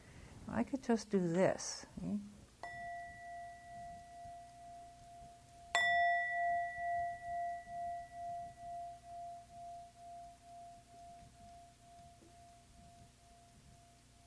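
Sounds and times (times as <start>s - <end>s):
speech: 0.5s - 2.4s
bell struck and ringing out: 2.6s - 11.2s.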